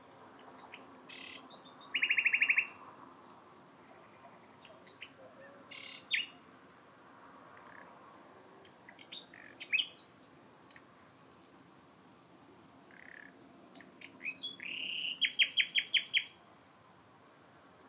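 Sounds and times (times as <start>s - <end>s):
cricket chirping: 0.2s - 17.8s
Common nightingale Luscinia megarhynchos singing: 0.4s - 2.9s, 4.6s - 6.5s, 8.9s - 10.9s, 12.9s - 16.6s.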